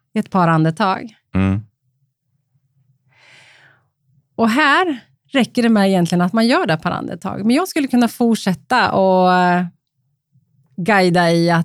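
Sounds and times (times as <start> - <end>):
speech: 0.2 - 1.7, 4.4 - 9.8, 10.8 - 11.6
breathing in and out through the nose: 3.1 - 3.9.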